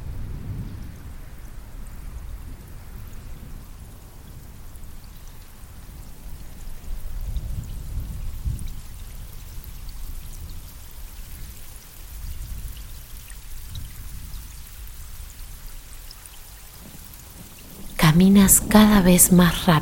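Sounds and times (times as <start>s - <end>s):
heavy rain pouring: 0.0s - 19.8s
scattered sharper drips: 4.2s - 19.8s
deep thunder rumbling: 16.8s - 19.8s
speech: 18.1s - 19.8s.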